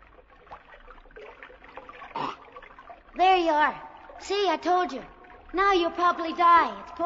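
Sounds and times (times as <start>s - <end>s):
slurp or splash: 0.0s - 7.0s
stream water trickling and gurgling: 0.0s - 7.0s
person drinking from a stream: 2.1s - 2.5s
speech: 3.2s - 7.0s.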